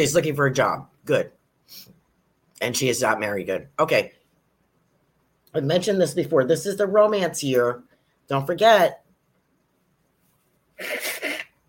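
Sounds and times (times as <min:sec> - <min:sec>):
speech: 0:00.0 - 0:02.0, 0:02.6 - 0:04.2, 0:05.5 - 0:09.0, 0:10.8 - 0:11.1
person coughing: 0:10.8 - 0:11.6.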